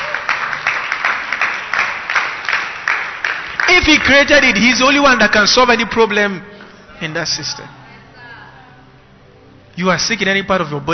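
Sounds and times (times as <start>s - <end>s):
crowd clapping in a steady rhythmic beat: 0.0s - 4.9s
speech: 3.8s - 7.8s, 9.8s - 10.9s.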